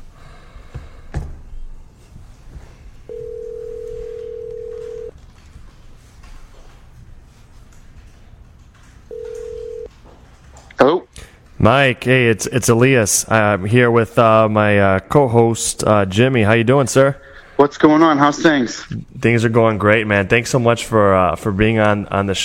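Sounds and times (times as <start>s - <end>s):
electronic telephone ring tones on the line: 3.1s - 5.1s, 9.1s - 9.9s
speech: 11.6s - 22.4s.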